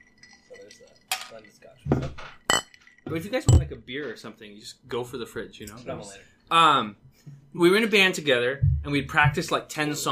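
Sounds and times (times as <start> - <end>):
glasses clinking in a whiskey toast: 0.0 - 3.8
speech: 0.7 - 10.1.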